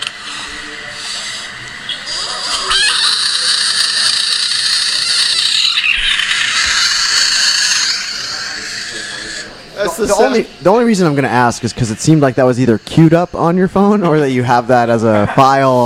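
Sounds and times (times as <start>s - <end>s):
toad or frog screaming: 2.0s - 9.6s
speech: 9.8s - 15.8s.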